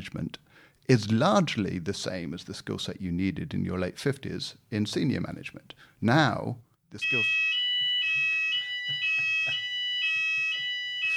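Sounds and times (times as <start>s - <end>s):
speech: 0.0s - 7.5s
fire alarm blaring at high pitch in a building: 7.0s - 11.1s.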